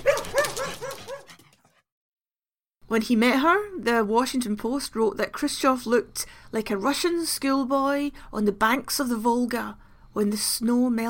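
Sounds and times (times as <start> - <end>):
puppy barking and whimpering: 0.0 - 1.5
speech: 2.9 - 11.0.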